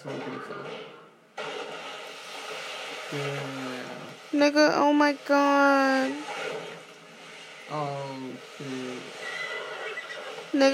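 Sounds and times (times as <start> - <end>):
speech: 0.0 - 1.5, 3.1 - 3.7, 4.3 - 6.3, 7.7 - 9.2, 10.5 - 10.7
horse neighing with wavering whinnies in a film: 9.2 - 10.5.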